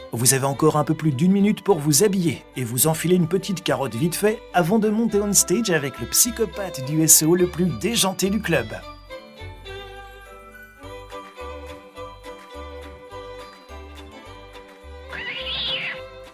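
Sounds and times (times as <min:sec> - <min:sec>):
steady rhythmic music: 0:00.0 - 0:16.3
speech: 0:00.1 - 0:09.0
cat meowing: 0:15.1 - 0:16.1.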